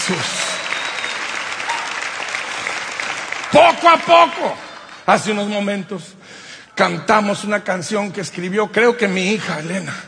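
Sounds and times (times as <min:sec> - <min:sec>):
congregation applauding: 0:00.0 - 0:05.7
speech: 0:00.1 - 0:00.5, 0:03.5 - 0:06.2, 0:06.8 - 0:10.0.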